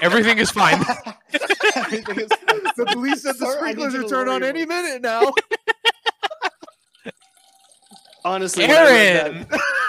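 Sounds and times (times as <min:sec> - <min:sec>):
laughter: 0:00.0 - 0:04.1, 0:05.0 - 0:07.2, 0:09.1 - 0:09.8
speech: 0:00.0 - 0:05.5, 0:08.2 - 0:09.8
soda maker carbonating water: 0:06.4 - 0:09.3.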